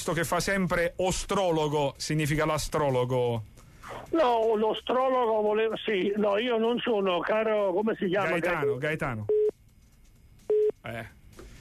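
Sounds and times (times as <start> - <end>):
speech: 0.0 - 9.4, 10.8 - 11.2
telephone keypad button tones from a caller pressing buttons: 8.6 - 9.5, 10.5 - 10.7.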